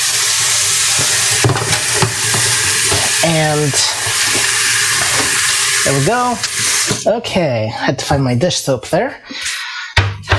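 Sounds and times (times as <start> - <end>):
water running into a sink while hands are rinsed: 0.0 - 7.1
knocks and splashes: 1.0 - 5.5
speech: 3.2 - 4.4, 5.9 - 9.4.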